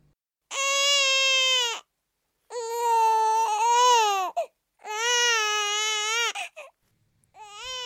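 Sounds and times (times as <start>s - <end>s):
newborn baby crying: 0.5s - 1.9s, 2.5s - 6.8s, 7.4s - 7.8s.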